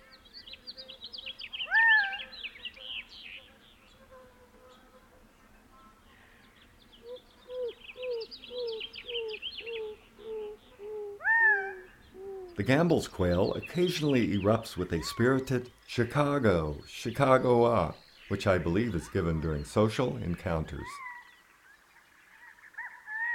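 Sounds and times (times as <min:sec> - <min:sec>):
house finch singing warbling bursts: 0:00.0 - 0:03.5, 0:07.1 - 0:21.3
speech: 0:12.6 - 0:21.0.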